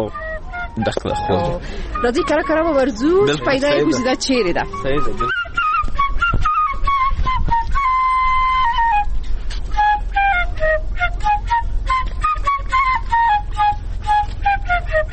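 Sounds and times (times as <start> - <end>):
speech: 0.0 - 0.2, 0.8 - 5.4
Afghan shpelai flute playing a breathy wavering melody in Kabul: 0.0 - 15.1
low rumble: 0.0 - 15.1.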